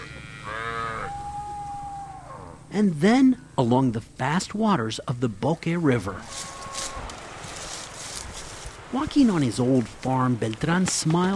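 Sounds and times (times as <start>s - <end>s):
cow in a herd of cattle mooing: 0.0s - 2.7s
speech: 2.7s - 6.6s, 8.9s - 11.3s.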